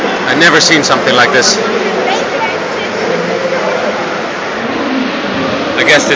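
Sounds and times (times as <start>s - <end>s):
heavy tropical storm rain: 0.0s - 6.1s
speech: 0.3s - 1.9s, 5.8s - 6.1s.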